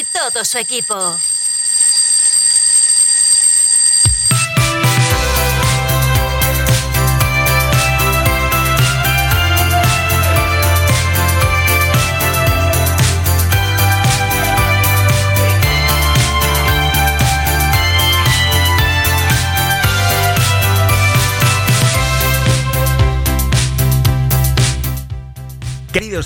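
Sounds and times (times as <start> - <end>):
shrill steady alarm clock ringing: 0.0 - 6.6, 7.6 - 22.5
speech: 0.1 - 1.4
loud upbeat music with a thumping beat: 4.1 - 26.2.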